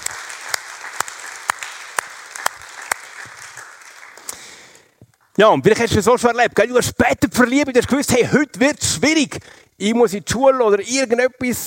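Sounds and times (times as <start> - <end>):
audience applause: 0.0 - 4.8
speech: 5.4 - 11.6.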